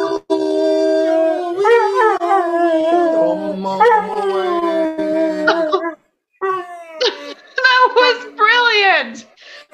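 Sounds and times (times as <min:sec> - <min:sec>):
person singing: 0:00.0 - 0:05.8
Catahoula Leopard Dog howling along to a song: 0:00.0 - 0:07.2
Catahoula Leopard Dog yelping and whining: 0:01.5 - 0:08.9.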